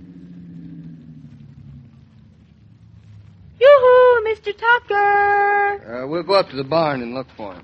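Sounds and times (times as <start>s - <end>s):
car engine humming as the vehicle drives in at a house: 0.0s - 6.1s
speech: 4.4s - 7.6s.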